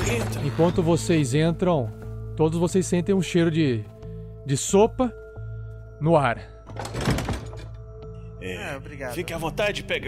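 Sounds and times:
speech: 0.1s - 5.2s, 6.0s - 7.1s, 8.4s - 10.0s
lodging house door opening with a thunk: 6.7s - 7.8s.

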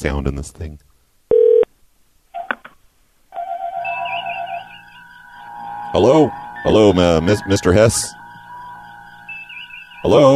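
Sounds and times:
speech: 0.0s - 0.9s, 5.9s - 8.2s, 10.0s - 10.3s
steady electronic telephone tone: 3.3s - 10.3s.

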